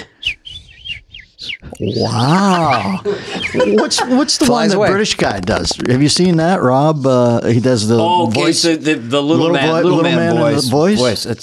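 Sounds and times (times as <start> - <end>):
person whistling an imitation of a small quiet bird: 0.0 - 3.8
laughter: 1.6 - 5.6
speech: 1.8 - 11.4.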